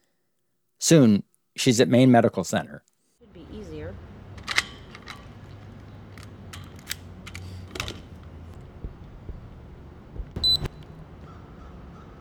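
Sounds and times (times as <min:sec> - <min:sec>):
speech: 0:00.8 - 0:02.9
low hum of traffic: 0:03.2 - 0:12.1
bike lock being fastened to a bike rack: 0:04.1 - 0:08.7.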